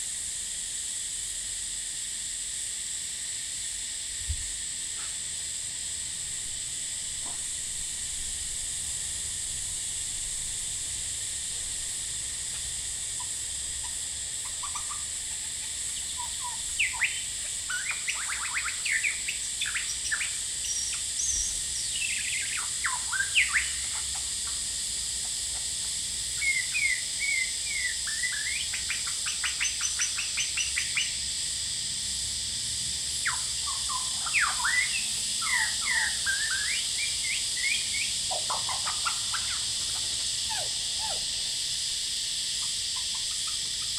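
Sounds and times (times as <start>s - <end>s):
cicadas droning: 0.0s - 43.9s
male lyrebird singing outside a window: 13.2s - 24.6s, 26.4s - 31.1s, 33.2s - 41.3s, 42.6s - 43.9s.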